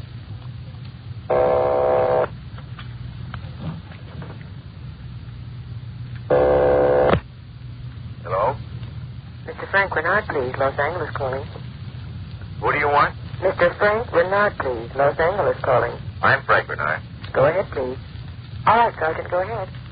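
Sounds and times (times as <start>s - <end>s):
steady low telephone line hum: 0.0s - 19.9s
buzzing telephone ringing through the line: 1.3s - 2.3s, 6.3s - 7.2s
voices on a telephone line: 8.2s - 8.8s, 9.4s - 11.8s, 12.4s - 19.9s
speech: 9.7s - 11.6s, 12.6s - 19.8s.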